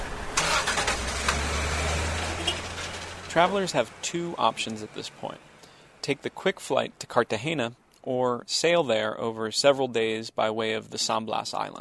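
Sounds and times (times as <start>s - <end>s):
vehicle engines driven towards the docks at a port: 0.0s - 8.0s
speech: 3.4s - 11.7s.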